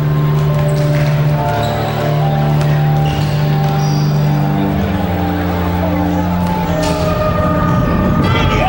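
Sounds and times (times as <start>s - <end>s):
basketballs bouncing in a gym during team warm-up: 0.0s - 4.4s
shoes squeaking: 0.0s - 7.3s
crowd murmuring: 0.0s - 8.6s
people shouting: 8.2s - 8.6s.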